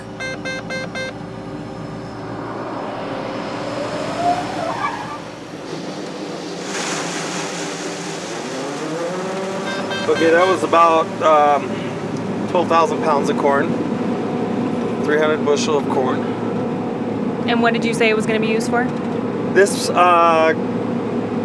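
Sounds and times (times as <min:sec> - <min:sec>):
engine hum: 0:00.0 - 0:21.4
speech: 0:10.2 - 0:11.8, 0:12.5 - 0:13.8, 0:15.1 - 0:16.4, 0:17.5 - 0:20.7.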